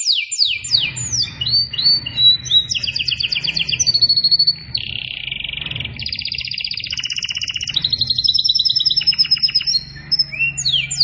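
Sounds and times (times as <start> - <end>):
canary in vigorous continuous song of buzzy trills: 0.0 - 11.0.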